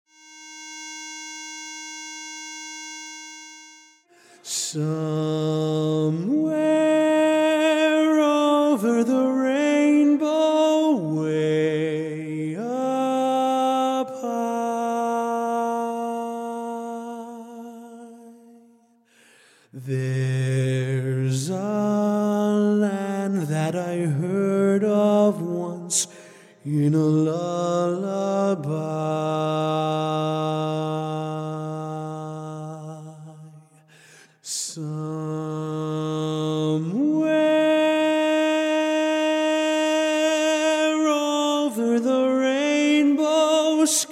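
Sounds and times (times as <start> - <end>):
a cappella lead singing: 4.2 - 18.7, 19.8 - 33.8, 34.4 - 44.0.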